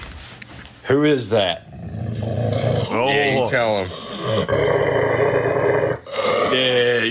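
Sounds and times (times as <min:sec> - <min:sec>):
speech: 0:00.9 - 0:01.8, 0:03.0 - 0:05.5, 0:06.5 - 0:07.1
dog growling angrily: 0:01.6 - 0:07.1.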